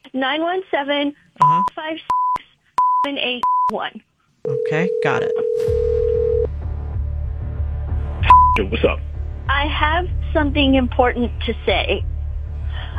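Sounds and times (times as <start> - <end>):
speech: 0.1 - 2.2, 3.0 - 5.9, 8.6 - 12.1
telephone dialing beeps: 1.4 - 3.7, 4.5 - 6.5, 8.3 - 8.6
long steady telephone tone: 4.5 - 6.5
low hum: 5.6 - 12.9.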